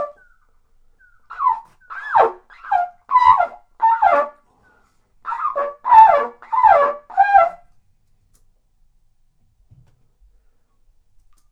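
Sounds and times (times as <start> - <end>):
bird calling in loud rasping slurred bursts: 1.3 - 4.3, 5.3 - 7.5.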